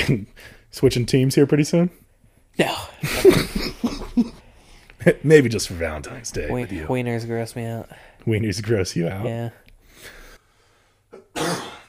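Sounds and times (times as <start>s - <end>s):
speech: 0.0s - 2.0s, 2.6s - 4.3s, 5.0s - 10.2s
person coughing: 11.1s - 11.8s.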